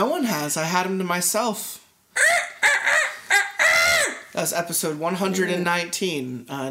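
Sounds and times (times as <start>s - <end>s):
speech: 0.0s - 2.4s, 4.4s - 6.6s
rooster crowing: 2.2s - 4.3s.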